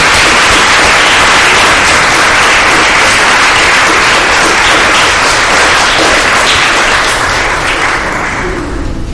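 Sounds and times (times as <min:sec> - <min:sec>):
audience applause with many hands clapping: 0:00.0 - 0:09.0.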